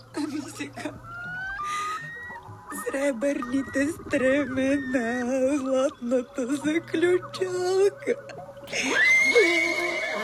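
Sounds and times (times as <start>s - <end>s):
horse neighing in the fog: 1.0s - 6.0s, 8.7s - 10.2s
speech: 3.0s - 9.8s.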